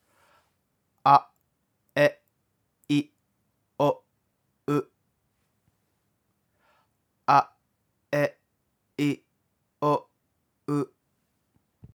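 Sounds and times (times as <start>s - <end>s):
person pronouncing vowels: 1.0s - 1.4s, 2.0s - 2.2s, 2.9s - 3.2s, 3.8s - 4.0s, 4.7s - 5.0s, 7.3s - 8.4s, 9.0s - 10.1s, 10.7s - 11.0s.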